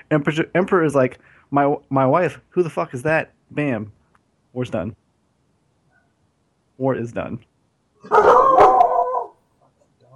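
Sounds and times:
speech: 0.1s - 5.0s, 6.8s - 8.5s
dog barking and howling: 8.0s - 9.4s.

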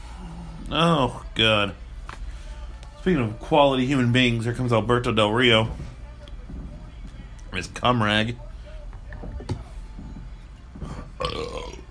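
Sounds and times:
speech: 0.7s - 1.8s, 3.0s - 5.9s, 7.6s - 8.4s
longer gurgling belch: 11.1s - 11.8s
loud burps: 11.2s - 11.8s.

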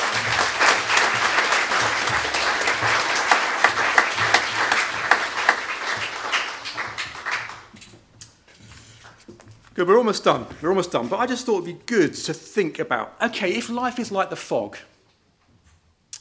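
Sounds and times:
audience applause: 0.0s - 7.8s
speech: 9.8s - 14.9s.

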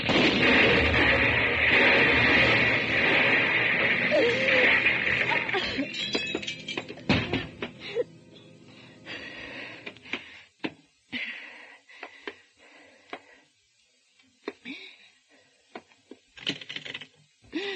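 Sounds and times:
accidental explosion with loud sustained roaring blast: 0.0s - 5.9s
cracks and crashes of falling debris: 0.0s - 8.0s.

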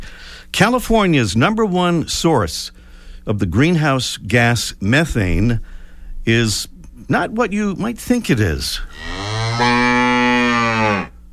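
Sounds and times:
speech: 0.6s - 10.0s
cow mooing: 8.9s - 11.2s.

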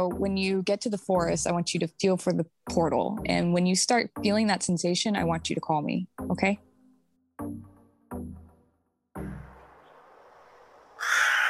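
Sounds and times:
speech: 0.0s - 6.7s
crows cawing: 11.0s - 11.4s.

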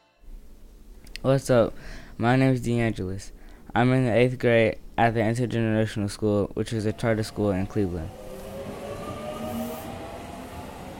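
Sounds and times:
speech: 1.2s - 8.2s
train running on rails: 6.7s - 10.9s.

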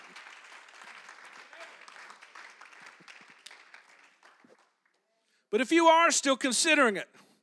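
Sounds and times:
audience clapping hands: 0.0s - 5.1s
speech: 5.5s - 7.2s.

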